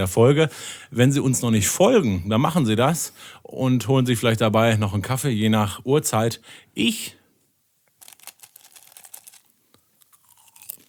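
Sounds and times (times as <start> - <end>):
speech: 0.0 - 7.2
popcorn being eaten, crunching and chewing: 8.0 - 10.8.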